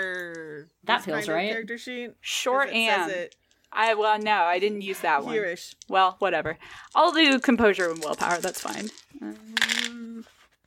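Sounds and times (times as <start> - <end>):
speech: 0.9 - 9.7
four dice clattering across a hard surface: 2.8 - 6.1, 6.7 - 10.0.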